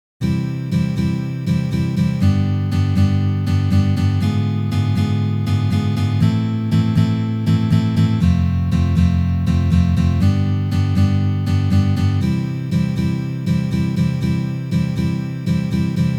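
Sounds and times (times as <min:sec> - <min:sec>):
chord progression with diminished chords: 0:00.2 - 0:16.1.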